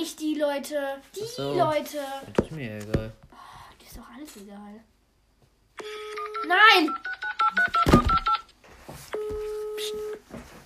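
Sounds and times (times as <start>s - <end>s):
speech: 0.1s - 3.3s, 3.9s - 4.9s, 5.8s - 8.0s, 9.1s - 10.6s
telephone keypad dialing tones: 5.8s - 8.5s.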